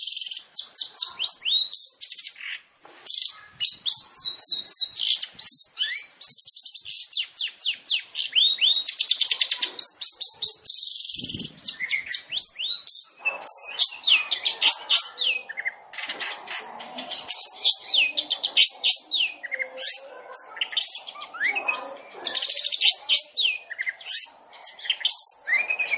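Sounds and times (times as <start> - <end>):
long-tailed shrike song chatter: 0.0 - 25.9.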